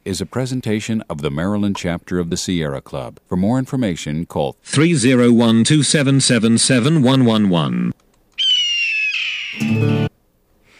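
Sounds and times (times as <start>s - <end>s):
speech: 0.0s - 8.0s
bald eagle screeching: 8.4s - 9.8s.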